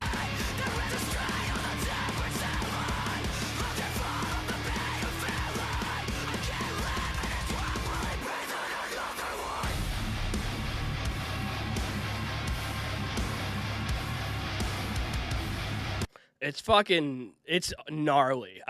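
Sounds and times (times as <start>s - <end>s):
harsh screamed vocals: 0.0s - 10.0s
heavy metal breakdown with pounding low-end chugs: 0.0s - 16.1s
speech: 16.5s - 18.6s.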